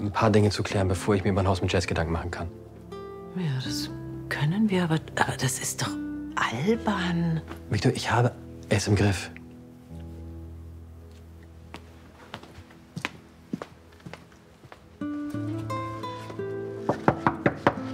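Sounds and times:
speech: 0.0 - 2.7, 3.4 - 9.4
steady music: 0.0 - 17.9
grandmother knocking on a door: 16.9 - 17.8.

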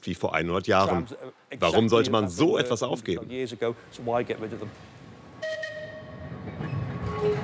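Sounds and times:
speech: 0.0 - 5.0
century-old tram rumbling on rails: 4.2 - 7.4
sustained bright whistle-like tone: 5.4 - 7.4.

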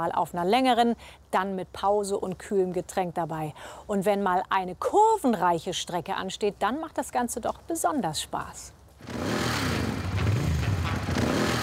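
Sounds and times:
speech: 0.0 - 9.6
motorcycle engine starting and revving: 9.0 - 11.6.

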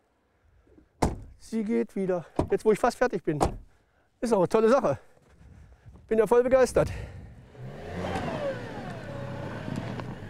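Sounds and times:
speech: 1.4 - 3.6, 4.2 - 5.1, 6.1 - 7.2
clanks and knocks: 2.3 - 2.6
heavy truck engine revving and straining to free stuck tires: 7.4 - 10.2.

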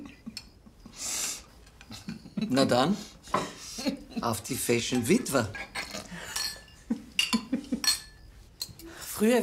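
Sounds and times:
speech: 2.5 - 3.2, 4.2 - 5.7, 9.2 - 9.4
dishes and cutlery clattering at a sink: 3.3 - 3.6, 4.9 - 8.8.

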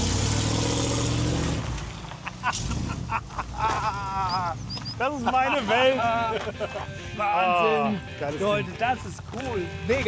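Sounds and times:
vehicle engine pulling away: 0.0 - 5.0
laughter: 2.1 - 8.0
speech: 2.5 - 10.0.

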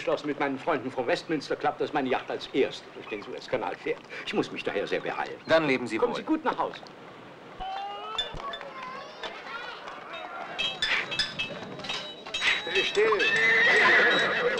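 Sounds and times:
speech: 0.0 - 7.1, 13.0 - 14.5
hooves clopping: 0.0 - 14.5
horse neighing and whinnying while being shod: 12.4 - 14.5.

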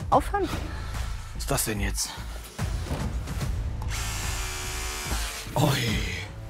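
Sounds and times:
speech: 0.1 - 0.8, 1.4 - 3.0, 5.6 - 6.2
power drill bit hitting steel rebar in concrete: 3.8 - 6.1.

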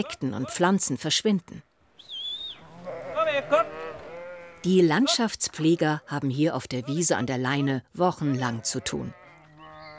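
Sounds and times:
speech: 0.0 - 1.7, 3.4 - 3.8, 4.6 - 9.2
sheep bleating on a riverside meadow: 2.6 - 7.0, 8.3 - 9.9.

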